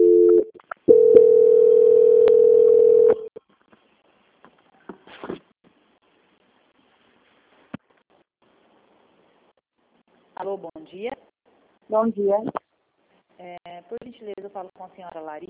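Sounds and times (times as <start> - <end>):
telephone line tone during call transfer: 0.0 - 3.3
speech: 10.7 - 11.3, 11.9 - 12.6, 13.4 - 15.4.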